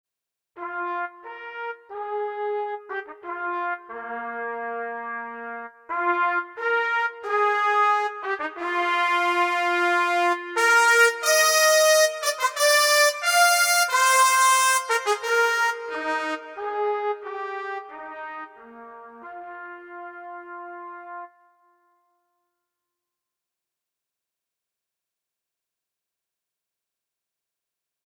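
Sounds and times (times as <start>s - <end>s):
orchestral trumpets: 0.6s - 21.4s.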